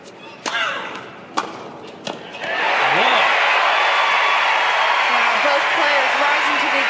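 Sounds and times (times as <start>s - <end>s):
tennis racket hitting ball: 0.4s - 2.6s
people shouting in a tennis crowd: 2.4s - 6.8s
tennis crowd cheering and applauding: 2.4s - 6.8s.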